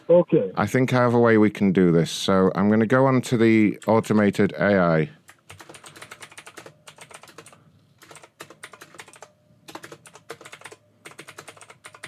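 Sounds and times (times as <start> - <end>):
speech: 0.1 - 5.2
rapid typing on a computer keyboard: 5.4 - 12.0.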